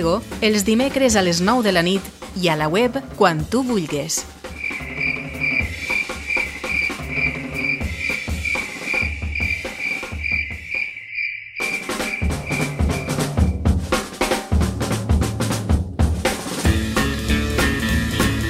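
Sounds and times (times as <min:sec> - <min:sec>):
speech: 0:00.0 - 0:04.4
busy rhythmic lower sounds: 0:00.0 - 0:10.8, 0:11.6 - 0:18.4
crickets chirping: 0:04.5 - 0:13.7.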